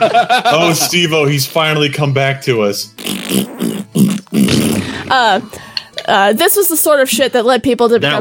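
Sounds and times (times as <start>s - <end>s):
laughter: 0.0s - 1.1s
speech: 0.0s - 8.1s
fart noises blown with the mouth: 3.0s - 5.4s.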